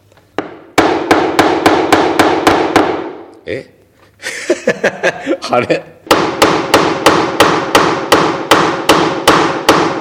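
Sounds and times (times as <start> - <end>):
hammer driving a nail into a homemade rocket launch pad base: 0.4 - 3.3, 6.1 - 9.9
speech: 3.5 - 6.0
laughter: 4.2 - 5.9.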